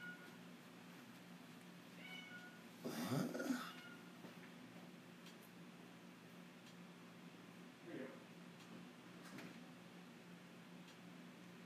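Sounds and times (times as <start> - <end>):
faint room hum: 0.0 - 11.6
male cat meowing: 2.0 - 4.2.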